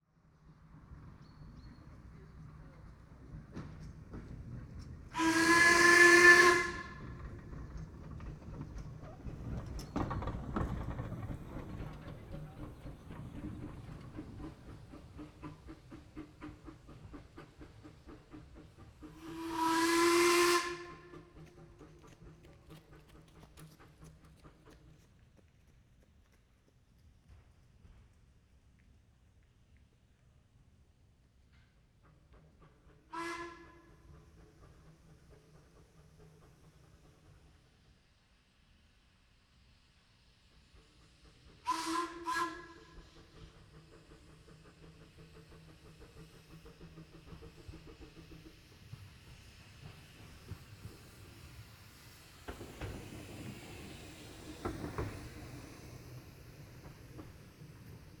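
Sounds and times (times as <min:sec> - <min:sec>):
steam train passing by: 0:00.2 - 0:58.1.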